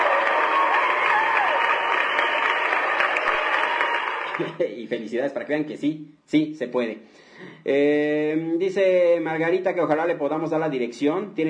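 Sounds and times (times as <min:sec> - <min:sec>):
recorded crowd applause: 0:00.0 - 0:04.6
speech: 0:04.4 - 0:11.4.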